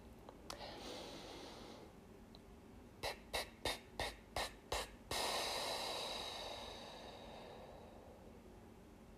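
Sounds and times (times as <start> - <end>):
faint breathing: 0.5 - 2.0, 3.0 - 8.5.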